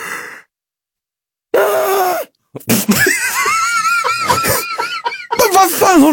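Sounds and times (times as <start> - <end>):
person imitating a woman's screeching yawn: 1.5 - 2.4
speech: 2.5 - 3.2, 5.9 - 6.1
laughter: 2.6 - 6.1.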